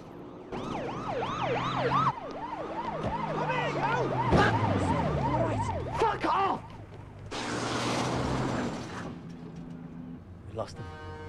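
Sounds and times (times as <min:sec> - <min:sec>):
police car sirens wailing: 0:00.0 - 0:08.8
police cars roaring past on a road: 0:00.6 - 0:10.5
speech: 0:10.6 - 0:11.0.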